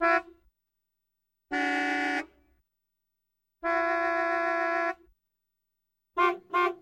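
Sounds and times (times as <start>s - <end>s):
assorted car horns: 1.5s - 2.4s, 3.6s - 5.1s, 6.2s - 6.8s.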